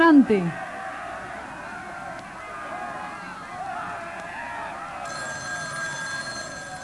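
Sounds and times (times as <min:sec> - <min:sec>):
crowd din at a busy ship departure: 0:00.0 - 0:06.8
telephone ringing: 0:05.0 - 0:06.8.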